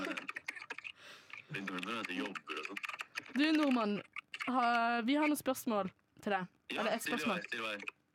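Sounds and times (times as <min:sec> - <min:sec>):
person typing on a computer keyboard at work: 0:00.2 - 0:04.8
speech: 0:01.5 - 0:08.0.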